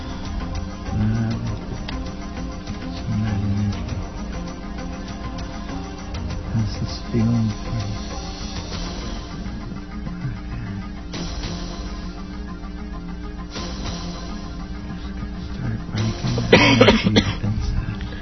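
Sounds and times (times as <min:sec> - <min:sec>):
low hum: 0:00.0 - 0:18.2
speech: 0:07.1 - 0:07.7
person coughing during a hands-on treatment session: 0:16.3 - 0:17.6.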